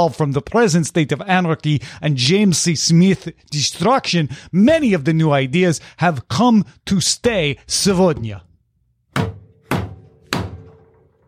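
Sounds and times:
speech: 0.0 - 8.5
hand or fist banging on a wooden table: 9.1 - 11.0.

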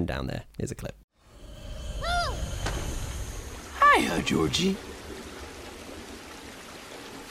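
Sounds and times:
speech: 0.0 - 1.0, 4.0 - 4.9
steady rain: 1.8 - 7.2
water rushing and trickling into a storm drain: 2.4 - 7.2.

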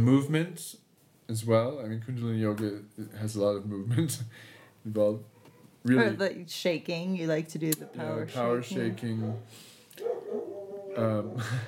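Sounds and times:
speech: 0.0 - 10.1, 11.0 - 11.6
excited dogs barking and yelping: 5.3 - 5.8, 7.8 - 11.6
dogs with whiny drawn-out cries: 7.8 - 11.6.

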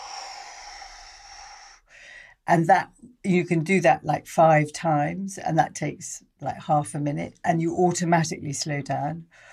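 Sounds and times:
slow deliberate breathing for a relaxation exercise: 0.0 - 2.4, 9.3 - 9.5
speech: 2.5 - 9.5.

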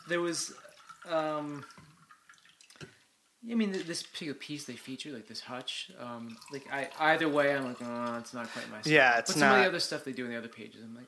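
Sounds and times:
coffee pouring into a cup: 0.0 - 3.0, 3.7 - 8.7
speech: 0.1 - 1.9, 3.4 - 11.0.

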